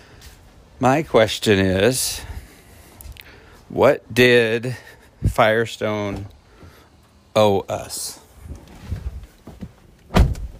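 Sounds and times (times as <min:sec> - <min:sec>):
speech: 0:00.8 - 0:02.4, 0:03.7 - 0:06.4, 0:07.4 - 0:08.2
person settling into a car with soft shuffling and low bumps: 0:08.5 - 0:10.5
car door thunk shutting: 0:10.0 - 0:10.5.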